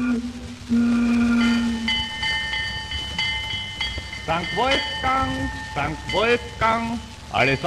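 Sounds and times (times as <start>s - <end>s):
steam train whistle at St. Wolfgang on the Wolfgangsee, Austria: 0.0s - 2.3s
ringing tones: 0.0s - 7.6s
steam train carriages rumbling: 0.0s - 7.6s
speech: 0.2s - 1.1s, 4.3s - 7.6s.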